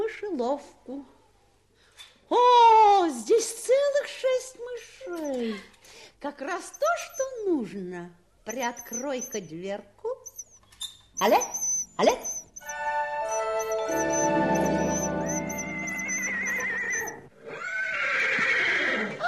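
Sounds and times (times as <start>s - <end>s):
speech: 0.1s - 1.2s, 2.0s - 10.2s, 11.2s - 12.4s
bright sustained shimmering tone: 12.6s - 17.2s
horses whinnying: 13.3s - 19.2s.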